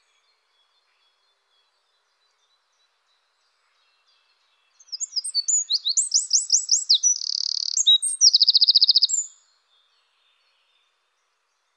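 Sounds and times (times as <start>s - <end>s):
Eurasian wren song: 4.7s - 9.4s.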